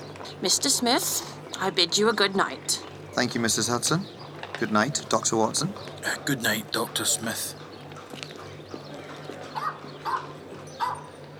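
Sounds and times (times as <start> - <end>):
speech: 0.4 - 7.6
dog barking in short yelps: 9.6 - 11.1.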